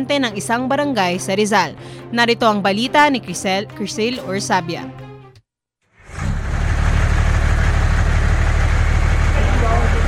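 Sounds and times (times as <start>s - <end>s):
speech: 0.0s - 5.0s
large water delivery truck engine starting up and idling: 6.0s - 10.0s.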